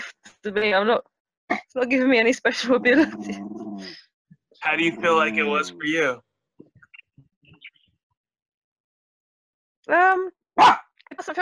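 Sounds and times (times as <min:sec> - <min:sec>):
speech: 0:00.4 - 0:04.0, 0:04.6 - 0:06.2, 0:09.9 - 0:11.3
laughter: 0:04.6 - 0:06.2
male dog barking: 0:10.6 - 0:10.9.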